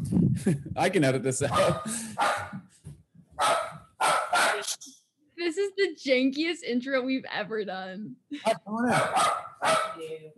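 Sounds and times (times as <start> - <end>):
speech: 0.1 - 2.5, 4.7 - 10.3
dog barking: 1.5 - 2.6, 3.4 - 4.6, 8.8 - 10.1.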